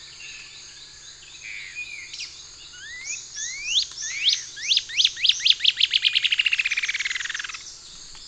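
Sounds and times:
Cinereous antshrike Thamnomanes caesius glaucus calling: 1.4 - 7.8.

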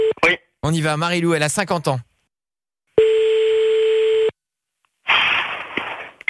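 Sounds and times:
speech: 0.1 - 2.1
long steady telephone dial tone: 3.0 - 4.4.

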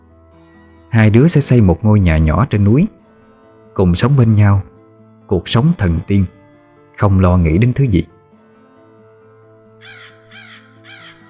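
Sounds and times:
speech: 0.9 - 3.0, 3.8 - 4.7, 5.3 - 6.4, 7.0 - 8.2
crow cawing harshly from a treetop: 9.8 - 11.2.

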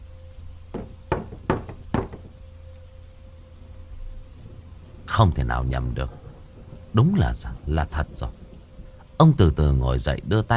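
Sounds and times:
faint steady hum: 0.0 - 10.5
rhythmic knocking at night in a house: 0.7 - 2.5
speech: 5.2 - 6.2, 6.9 - 8.4, 9.2 - 10.5.

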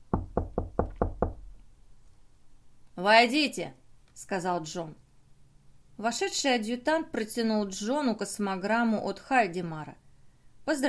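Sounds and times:
firm hollow knocking on a door: 0.0 - 1.5
speech: 3.0 - 5.0, 6.0 - 10.0, 10.6 - 10.8.

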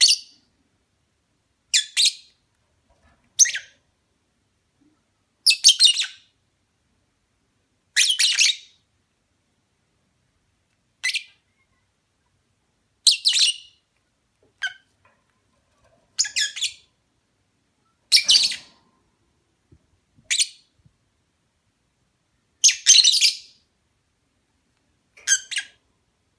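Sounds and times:
lovebird mating call chirps: 0.0 - 0.5, 1.7 - 2.4, 3.4 - 3.8, 5.4 - 6.4, 7.9 - 8.9, 11.0 - 11.9, 13.0 - 13.9, 14.6 - 14.9, 16.2 - 17.0, 17.8 - 18.9, 20.2 - 20.8, 22.6 - 23.7, 25.2 - 25.8.

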